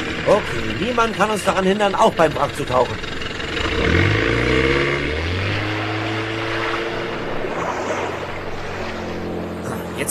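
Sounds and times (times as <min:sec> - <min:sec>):
motorboat engine revving and roaring: 0:00.0 - 0:10.0
speech: 0:00.2 - 0:04.0.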